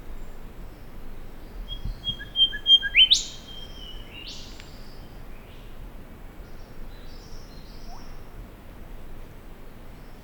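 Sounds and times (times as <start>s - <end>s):
quiet hiss: 0.0s - 10.2s
golden whistler Pachycephala pectoralis singing: 1.7s - 3.9s.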